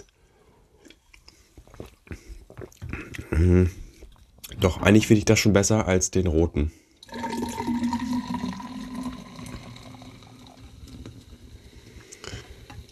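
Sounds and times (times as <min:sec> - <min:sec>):
speech: 0:03.4 - 0:03.8, 0:04.6 - 0:06.8
drink pouring into a glass: 0:07.0 - 0:12.9.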